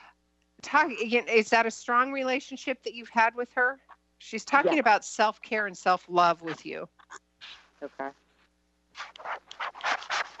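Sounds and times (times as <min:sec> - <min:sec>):
speech: 0:00.7 - 0:08.2
scratchy rustling of fabric or paper being handled: 0:07.4 - 0:10.3.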